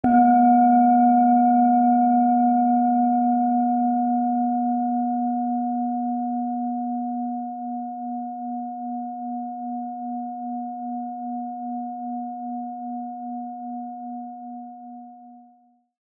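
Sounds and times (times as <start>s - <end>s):
Tibetan singing bowl 480 Hz deep resonance: 0.0s - 15.6s.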